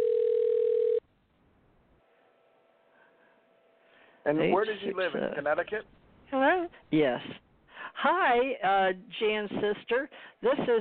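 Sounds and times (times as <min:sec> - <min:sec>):
telephone ringback tone over the line: 0:00.0 - 0:01.0
speech: 0:04.3 - 0:07.4, 0:08.0 - 0:10.7.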